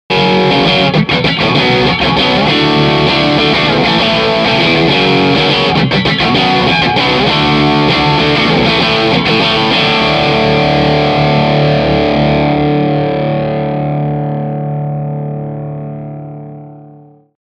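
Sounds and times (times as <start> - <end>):
bridge pickup guitar crunch with bass cut: 0.1 - 17.3.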